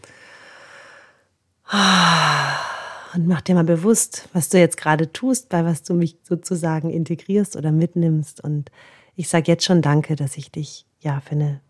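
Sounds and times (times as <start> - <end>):
deep breath in and out with sigh-like exhale: 0.0 - 3.2
speech: 3.2 - 11.6.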